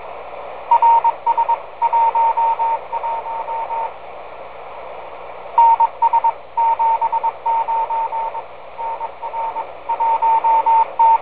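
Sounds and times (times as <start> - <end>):
CW telemetry on a 10m downlink: 0.7 - 3.9, 5.6 - 11.2.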